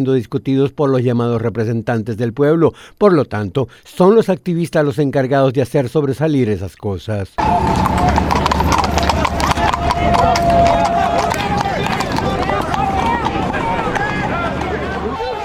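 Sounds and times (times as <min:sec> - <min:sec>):
speech: 0:00.0 - 0:09.2
loud busy crowd with overlapping voices: 0:07.4 - 0:15.4
police horse hooves clip-clopping on hard ground during a camp eviction in Philadelphia: 0:07.4 - 0:15.4.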